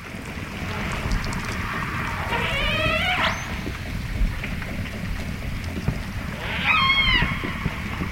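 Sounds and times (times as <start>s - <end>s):
underwater hiss and rumble: 0.0s - 8.0s
echolocation clicks from hunting orcas: 1.0s - 1.7s.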